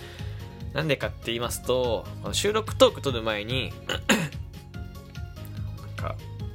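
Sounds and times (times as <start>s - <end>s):
speech: 0.7s - 4.4s
sharp raspy throat-clearing cough after choking on oolong tea: 3.9s - 4.4s.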